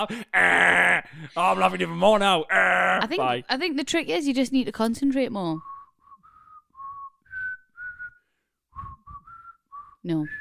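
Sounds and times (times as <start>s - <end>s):
speech: 0.0s - 5.7s, 10.0s - 10.3s
person whistling a wavering tune: 5.6s - 10.3s.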